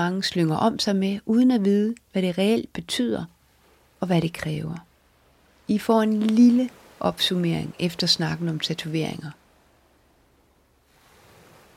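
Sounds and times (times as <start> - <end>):
speech: 0.0 - 3.4, 4.0 - 4.9, 5.7 - 9.4
North Sea waves on the west coast: 0.0 - 11.7
breezy windswept hiss over the surf: 3.3 - 11.7.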